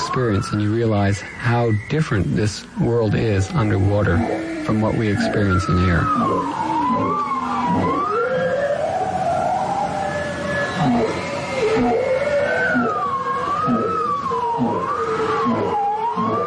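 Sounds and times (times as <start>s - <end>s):
bowhead whale song under Arctic ice: 0.0s - 16.4s
steady underwater noise: 0.0s - 16.4s
speech: 0.2s - 8.0s.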